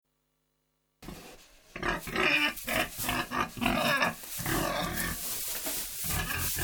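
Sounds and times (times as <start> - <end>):
pig squealing and grunting: 1.7 - 5.3, 6.0 - 6.6.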